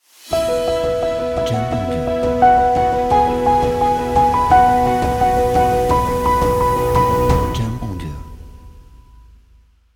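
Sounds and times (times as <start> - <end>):
uplifting logo music: 0.2 - 8.8.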